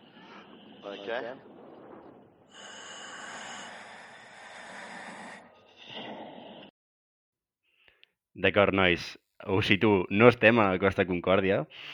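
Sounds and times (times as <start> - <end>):
speech: 0.8 - 1.6, 8.4 - 11.9
scuba diver breathing through regulator underwater at depth: 2.5 - 6.7.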